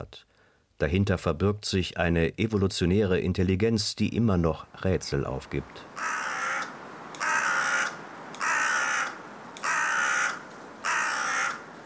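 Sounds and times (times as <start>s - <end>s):
speech: 0.0s - 6.2s
crow cawing harshly: 6.0s - 11.8s.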